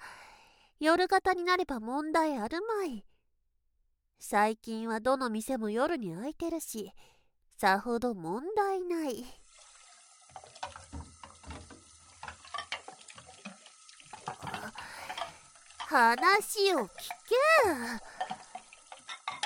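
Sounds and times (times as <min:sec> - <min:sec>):
speech: 0:00.8 - 0:03.1, 0:04.2 - 0:09.4, 0:15.9 - 0:18.1
water running at a sink while washing dishes: 0:09.2 - 0:19.4
plates and utensils clinking while washed at a sink: 0:10.3 - 0:16.3, 0:18.1 - 0:19.4
person speaking loudly and expressively: 0:15.9 - 0:18.0.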